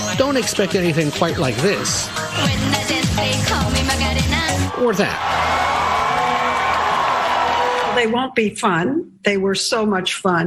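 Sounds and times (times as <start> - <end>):
speech: 0.2 - 6.0, 8.0 - 10.4
large convention crowd cheering and applauding with whoops and shouts: 4.5 - 8.1.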